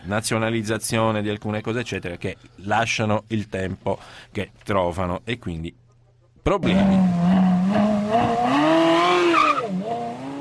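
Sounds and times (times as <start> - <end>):
speech: 0.1 - 5.8, 6.4 - 8.7
Ferrari engine roar: 6.6 - 10.3.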